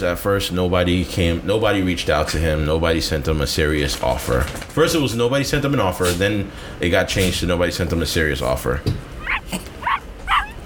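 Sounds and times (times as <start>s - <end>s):
speech: 0.0s - 9.7s
dog barking and whimpering: 9.2s - 10.6s.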